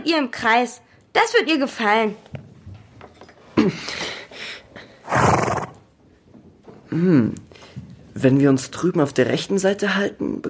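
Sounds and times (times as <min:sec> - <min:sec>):
speech: 0:00.0 - 0:02.4, 0:03.6 - 0:04.0, 0:06.9 - 0:07.5, 0:08.2 - 0:10.4
horse neighing loudly: 0:05.0 - 0:05.9.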